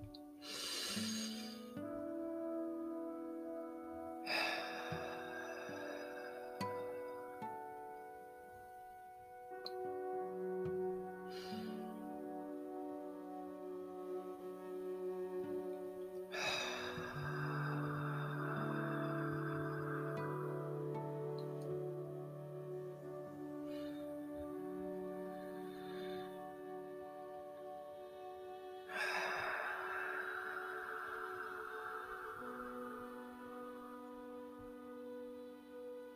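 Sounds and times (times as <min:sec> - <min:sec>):
soft sustained musical drone: 0:00.0 - 0:36.1
slow deep breathing in and out: 0:00.4 - 0:01.8, 0:04.3 - 0:07.4, 0:16.3 - 0:21.2, 0:28.9 - 0:33.6.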